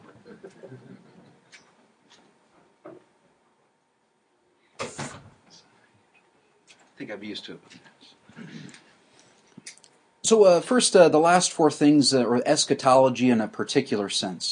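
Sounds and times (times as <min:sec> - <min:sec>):
door swinging shut with a solid thump and rattle: 0:04.8 - 0:05.4
speech: 0:07.0 - 0:08.8, 0:10.3 - 0:14.5.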